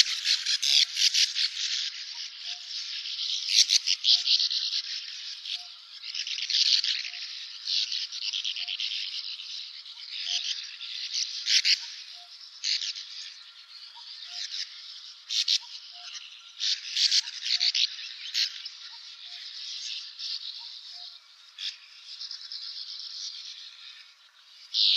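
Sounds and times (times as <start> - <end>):
sand martins giving dry buzzy grating calls: 0.0 - 24.9.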